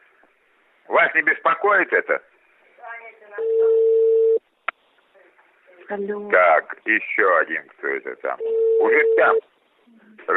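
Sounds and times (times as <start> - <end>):
speech: 1.0 - 2.3, 5.9 - 9.5
telephone ringing with a steady electronic tone: 3.4 - 4.4, 8.4 - 9.4.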